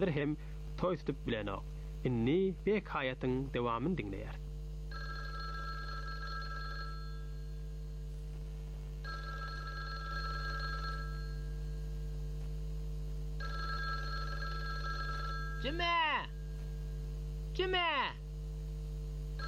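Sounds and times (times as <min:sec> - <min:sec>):
speech: 0:00.0 - 0:04.5, 0:15.6 - 0:16.4, 0:17.6 - 0:18.2
steady low hum: 0:00.0 - 0:19.4
telephone ringing in long trilling bursts: 0:04.9 - 0:07.6, 0:09.0 - 0:12.0, 0:13.4 - 0:16.7.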